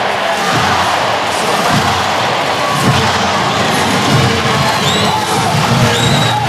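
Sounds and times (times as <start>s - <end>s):
large crowd cheering and shouting at a swimming race: 0.0s - 6.4s
high whistles: 4.6s - 6.4s.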